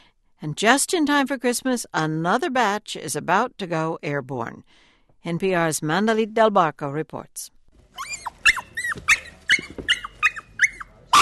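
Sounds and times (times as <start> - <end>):
speech: 0.4 - 8.2, 9.0 - 9.2
chihuahuas yapping in an overcrowded animal shelter in the San Fernando Valley, Los Angeles: 7.9 - 11.2.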